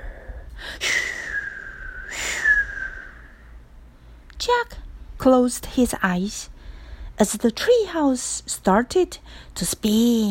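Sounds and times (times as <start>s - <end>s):
wind whistling: 0.9s - 3.6s
speech: 4.4s - 6.5s, 7.2s - 10.2s.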